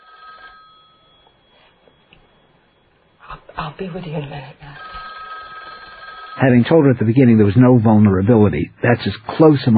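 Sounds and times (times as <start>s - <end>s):
telephone ringing with an electronic trill: 0.0s - 3.2s, 3.8s - 7.0s
hiss: 1.1s - 9.7s
speech: 3.6s - 4.8s, 6.4s - 9.7s.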